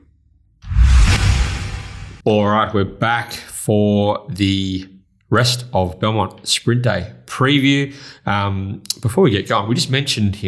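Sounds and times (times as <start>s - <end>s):
transition swoosh sound effect with deep low rumble: 0.6s - 2.2s
speech: 2.3s - 10.4s.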